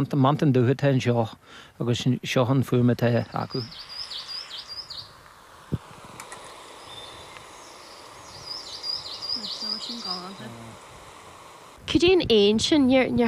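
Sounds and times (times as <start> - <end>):
speech: 0.0 - 4.2, 11.9 - 13.2
great spotted woodpecker calls: 3.2 - 5.6, 6.3 - 11.8.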